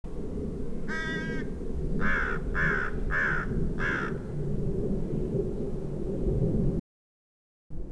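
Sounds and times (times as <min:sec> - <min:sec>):
steady low rumbling background: 0:00.1 - 0:06.8
American crow caws in mixed conifer forest: 0:00.9 - 0:04.2.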